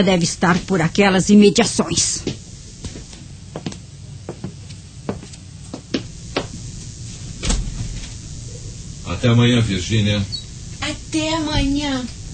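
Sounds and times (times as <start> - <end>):
speech: 0.0 - 2.4, 9.2 - 12.2
heavier thud of a door closing: 7.4 - 8.0.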